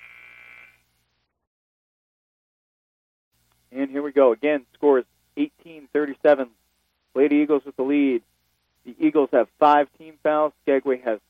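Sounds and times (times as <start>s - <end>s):
electronic buzzer at a basketball game: 0.0s - 0.9s
speech: 3.8s - 11.2s.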